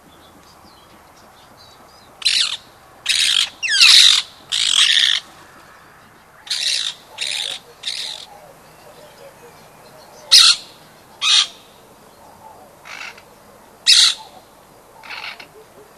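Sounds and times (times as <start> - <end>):
Rose-ringed parakeet screeching: 2.2 - 5.3, 6.4 - 8.4, 10.3 - 11.6, 12.8 - 13.2, 13.9 - 14.3, 15.0 - 15.5.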